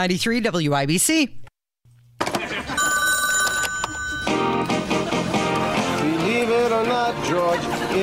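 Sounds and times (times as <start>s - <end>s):
speech: 0.0s - 1.5s
laughter: 2.2s - 3.2s, 3.8s - 8.0s
telephone ringing with bright buzzy electronic tone: 2.7s - 4.8s.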